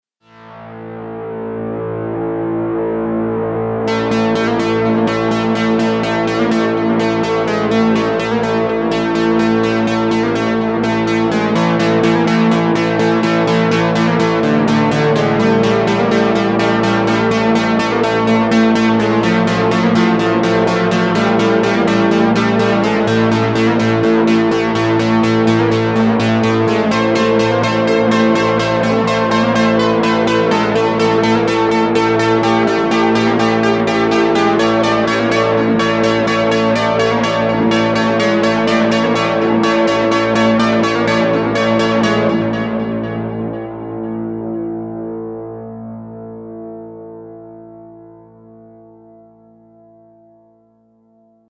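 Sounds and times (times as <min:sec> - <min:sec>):
industrial guitars: 0:00.3 - 0:45.2.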